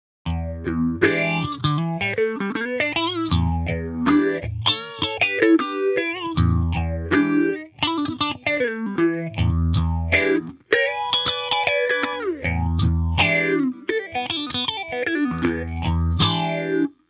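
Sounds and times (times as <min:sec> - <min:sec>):
PH350 Rotary Phaser pedal effect: 0:00.3 - 0:17.0.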